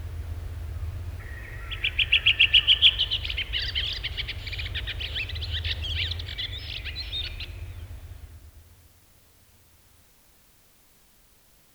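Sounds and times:
redwing song recorded in Finland: 0.0 - 9.0
faint low hum: 0.0 - 10.4.

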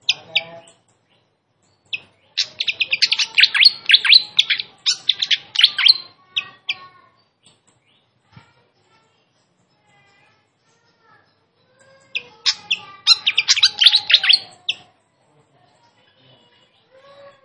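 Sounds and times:
flycatcher giving sharp high notes: 1.9 - 6.8, 11.9 - 14.9.

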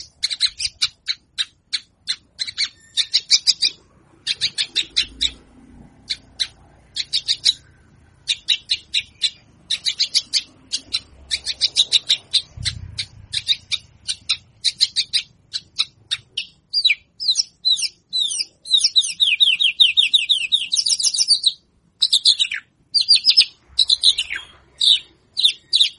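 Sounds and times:
Javan bush lark singing: 0.0 - 5.4, 6.1 - 25.9
faint low rumble: 3.5 - 14.7.

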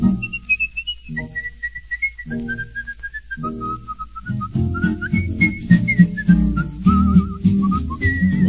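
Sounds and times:
person whistling a melody: 0.0 - 8.4
swing-style band accompaniment: 3.5 - 8.4.

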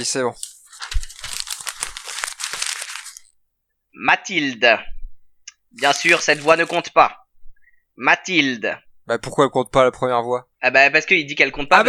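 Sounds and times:
speech: 0.0 - 1.0, 4.0 - 5.0, 5.7 - 7.2, 8.0 - 11.8
paper being crumpled by hand: 0.0 - 3.3, 5.8 - 6.8.

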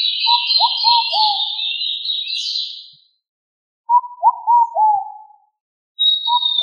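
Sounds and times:
pigeon calls: 0.2 - 1.8, 3.9 - 5.2, 6.3 - 6.6.

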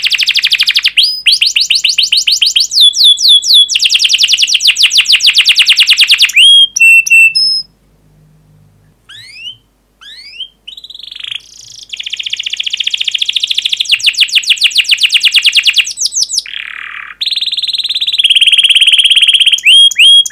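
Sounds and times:
canary song with fast chirping trills and whistled notes: 0.0 - 7.7, 8.8 - 20.3.

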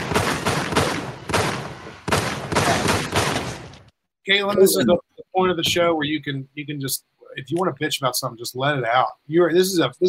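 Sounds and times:
gunfire sound effect: 0.0 - 3.9
speech: 4.3 - 10.0.

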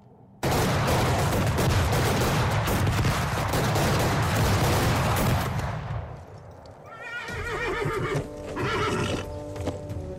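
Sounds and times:
rapid gunfire in a film assassination scene in a street: 0.4 - 5.6
horse hoof noise: 6.4 - 10.1
horse whinnying: 6.9 - 9.3.

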